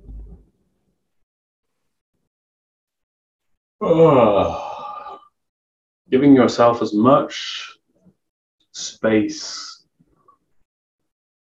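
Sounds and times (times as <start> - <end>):
speech: 3.8 - 4.7, 6.1 - 7.8, 8.8 - 9.7
person yawning: 3.8 - 5.2.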